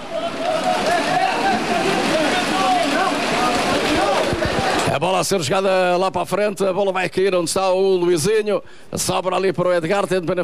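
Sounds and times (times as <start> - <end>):
steady dense rain falling: 0.0 - 4.9
speech: 5.0 - 10.4.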